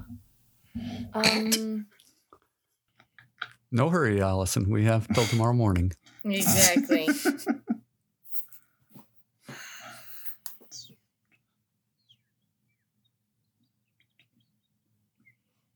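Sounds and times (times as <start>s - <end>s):
speech: 1.1s - 1.9s, 3.7s - 7.6s
laughter: 4.9s - 7.8s
faint bird chirps: 10.6s - 11.0s, 12.0s - 15.5s.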